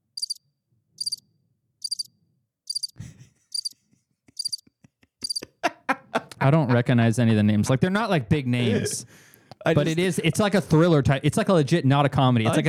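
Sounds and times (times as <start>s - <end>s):
crickets chirping: 0.2s - 0.4s, 1.0s - 1.2s, 1.8s - 2.1s, 2.7s - 3.7s, 4.4s - 4.6s, 5.2s - 5.4s
clicking noises: 2.7s - 5.5s
laughter: 3.0s - 7.7s, 8.5s - 10.9s, 12.4s - 12.6s
speech: 6.4s - 12.6s.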